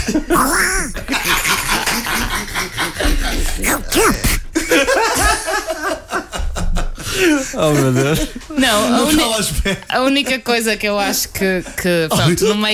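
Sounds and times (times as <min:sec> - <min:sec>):
laughter: 0:00.0 - 0:09.8
raspy cartoon duck-like voice squawking and quacking: 0:00.3 - 0:01.0, 0:03.6 - 0:04.4
speech: 0:07.9 - 0:12.7.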